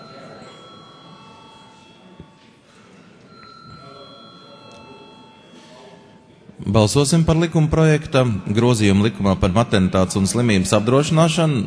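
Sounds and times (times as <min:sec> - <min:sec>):
parliamentary chamber bell ringing to call a vote: 0:00.0 - 0:02.5, 0:03.3 - 0:06.3
murmur of a large room full of people moving and talking quietly: 0:00.0 - 0:11.6
speech: 0:06.7 - 0:11.6.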